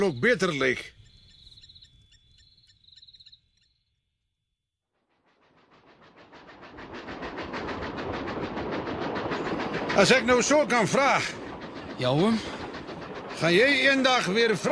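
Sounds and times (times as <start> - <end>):
speech: 0.0 - 1.0, 10.0 - 11.4, 12.0 - 12.6, 13.4 - 14.7
crickets chirping: 0.0 - 4.3, 5.0 - 14.7
train pulling away from a station: 5.0 - 14.7.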